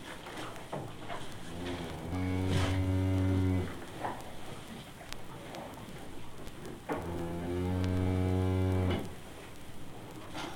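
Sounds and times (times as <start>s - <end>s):
cow giving a deep drawn-out low moo in a barn: 1.5s - 3.8s, 7.0s - 9.0s.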